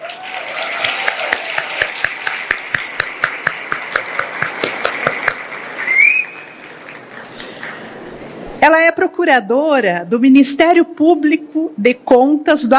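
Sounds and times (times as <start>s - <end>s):
room full of people applauding a speaker: 0.0s - 8.3s
high whistle: 5.8s - 6.6s
speech: 9.2s - 12.7s.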